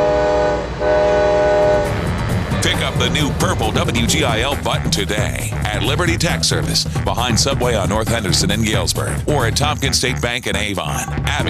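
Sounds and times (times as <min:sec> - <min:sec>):
multi-tone train horn blowing in Galesburg: 0:00.0 - 0:03.8
rumbling rail noise of a passing train: 0:00.0 - 0:07.6
speech: 0:03.0 - 0:11.4.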